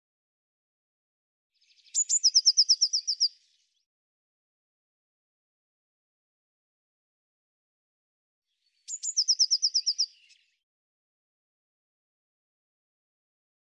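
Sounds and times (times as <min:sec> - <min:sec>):
Eurasian blue tit singing a high trill: 0:01.9 - 0:03.3, 0:08.9 - 0:10.3.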